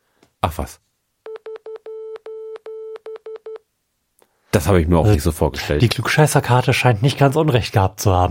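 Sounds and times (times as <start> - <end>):
speech: 0.5 - 0.8, 4.6 - 8.2
steady electronic beep tapping out SOS in Morse code: 1.3 - 3.6.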